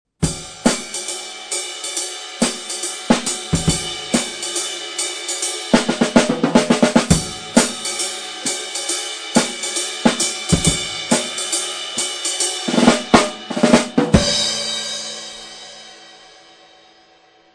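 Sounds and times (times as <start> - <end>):
drum kit playing: 0.2 - 16.8.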